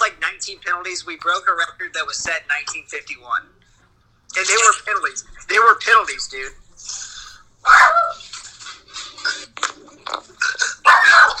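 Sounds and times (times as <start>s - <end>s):
speech: 0.4s - 3.6s, 4.4s - 8.2s
dog barking excitedly: 7.7s - 8.2s, 10.8s - 11.3s.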